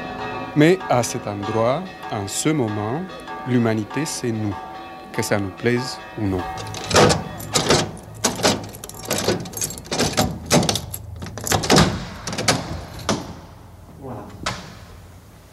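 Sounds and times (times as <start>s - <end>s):
speech: 0.6s - 7.2s
lock bolt turning with metallic clicks and clunks: 6.4s - 13.5s
door shutting: 6.4s - 13.6s, 14.2s - 15.0s.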